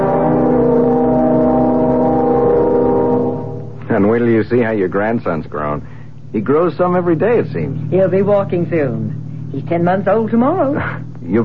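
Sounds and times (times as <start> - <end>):
car engine droning as the vehicle drives: 0.0 - 11.4
speech: 4.0 - 11.4.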